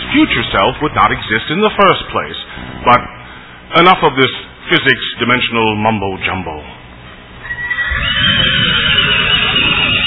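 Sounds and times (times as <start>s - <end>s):
low rumbling background: 0.0s - 10.0s
speech: 0.1s - 6.8s
horse whinnying with a high shrill neigh: 7.4s - 10.0s.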